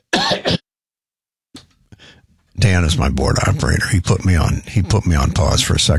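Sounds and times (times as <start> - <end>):
older man clearing throat: 0.1 - 0.6
speech: 2.7 - 5.9.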